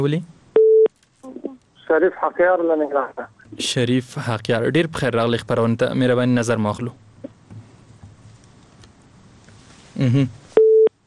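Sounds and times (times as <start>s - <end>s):
speech: 0.0s - 0.4s, 1.9s - 7.0s, 10.0s - 10.4s
telephone busy tone after a dropped call: 0.6s - 0.9s, 10.6s - 10.9s.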